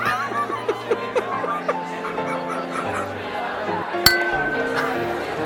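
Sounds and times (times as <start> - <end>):
laughter: 0.0 - 3.8
glasses clinking together in a toast: 4.1 - 5.2
sharp ringing chime: 4.1 - 5.3.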